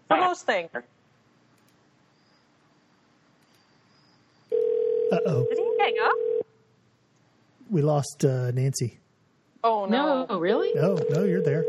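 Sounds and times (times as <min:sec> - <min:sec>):
speech: 0:00.1 - 0:01.0, 0:05.1 - 0:06.4, 0:07.7 - 0:09.0, 0:09.6 - 0:11.6
steady telephone tone after a call drops: 0:04.5 - 0:06.4, 0:10.6 - 0:11.6
voices murmuring: 0:05.1 - 0:06.2, 0:07.7 - 0:08.9, 0:09.9 - 0:11.6.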